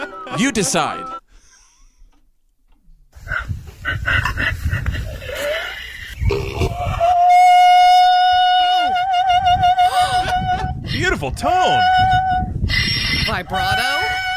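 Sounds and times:
speech: 0:00.4 - 0:01.2, 0:11.2 - 0:12.4, 0:13.3 - 0:14.1
donkey braying high notes: 0:03.2 - 0:14.3.

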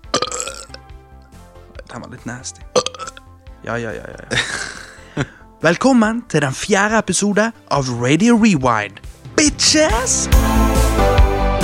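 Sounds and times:
loud drawn-out burp: 0:00.0 - 0:00.9, 0:01.8 - 0:03.3
speech: 0:01.9 - 0:02.8, 0:03.6 - 0:10.6
laughter: 0:04.2 - 0:05.4.

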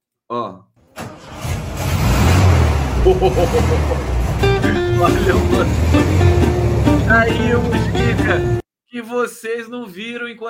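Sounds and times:
1982 Volkswagen Fusca 1600 cc engine starting and running: 0:00.8 - 0:08.6
laughter: 0:03.0 - 0:06.3
speech: 0:03.1 - 0:04.2, 0:05.0 - 0:06.3, 0:07.1 - 0:10.4.

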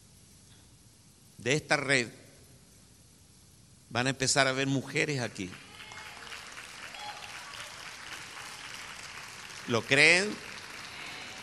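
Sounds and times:
speech: 0:01.4 - 0:02.2, 0:03.9 - 0:05.6, 0:09.7 - 0:10.5
audience applause: 0:05.4 - 0:11.4.

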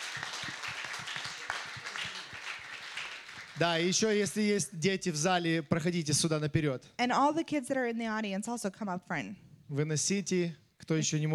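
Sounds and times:
audience clapping: 0:00.0 - 0:04.3
speech: 0:03.6 - 0:11.3.

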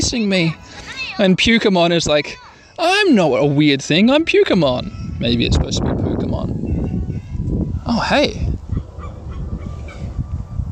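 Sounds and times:
speech: 0:00.1 - 0:06.7, 0:07.9 - 0:08.5
honking waterfowl calls, possibly a swan: 0:08.7 - 0:10.2.

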